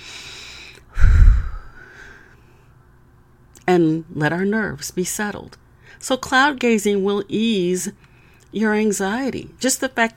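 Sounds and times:
deep breath: 0.0s - 2.7s
speech: 3.7s - 10.1s.

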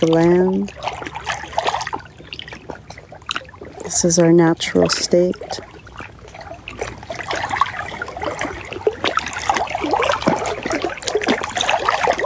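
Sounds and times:
speech: 0.0s - 1.0s, 3.9s - 5.7s
water trickling and splashing: 0.0s - 12.2s.

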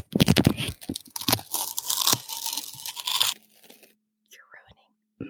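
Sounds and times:
duct tape being pulled and torn off the roll: 0.1s - 3.9s.

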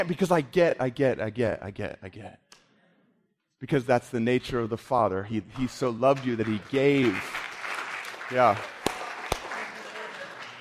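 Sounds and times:
speech: 0.0s - 2.5s, 3.6s - 7.4s, 8.3s - 8.8s
crowd applauding: 5.5s - 10.5s.

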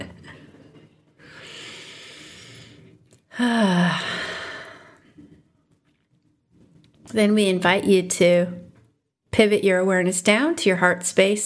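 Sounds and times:
deep breathing during a meditation pause: 1.2s - 5.2s
speech: 7.2s - 8.6s, 9.4s - 11.4s.

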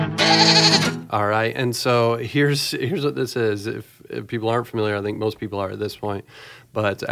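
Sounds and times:
goat bleating: 0.2s - 1.1s
speech: 1.1s - 7.1s.

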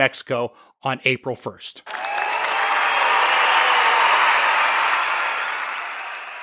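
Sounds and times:
speech: 0.0s - 2.0s
large crowd applauding on a cannabis business expo floor in New Mexico: 1.9s - 6.4s.

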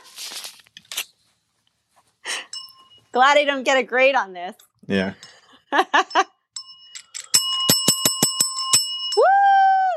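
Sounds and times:
small hand-held praise bell ringing: 2.3s - 3.1s, 5.2s - 9.4s
speech: 3.1s - 6.3s.

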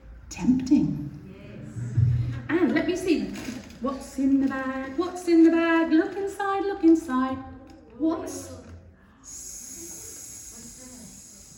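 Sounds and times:
speech: 0.3s - 1.2s, 2.5s - 8.6s
faint voiced murmuring: 9.2s - 11.5s
person imitating a snake hissing: 9.3s - 11.5s.

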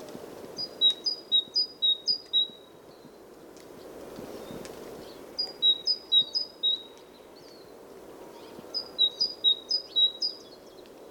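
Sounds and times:
wind through the trees by a lake in Sweden: 0.0s - 11.0s
great tit singing in winter by a lake in Sweden: 0.6s - 3.1s, 5.0s - 7.7s, 8.3s - 10.6s.

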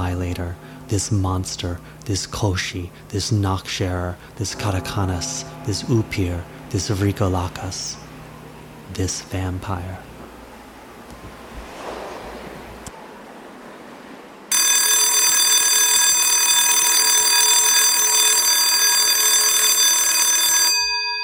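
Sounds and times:
loud electric school bell ringing: 0.0s - 8.8s, 14.5s - 21.2s
soft rushing noise: 0.0s - 14.5s
speech: 0.3s - 8.0s, 8.9s - 10.1s.

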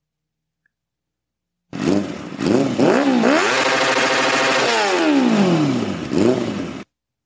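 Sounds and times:
Ariel Leader two-stroke motorcycle engine revving: 1.7s - 6.9s.

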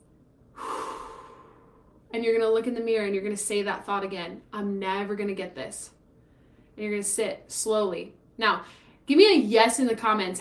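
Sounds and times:
deep breath: 0.5s - 2.0s
speech: 2.2s - 6.0s, 6.8s - 10.3s.

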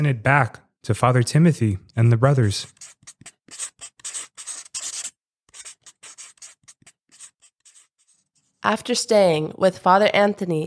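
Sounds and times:
speech: 0.0s - 3.7s, 8.6s - 10.6s
writing scratching on a scroll: 2.2s - 8.6s.

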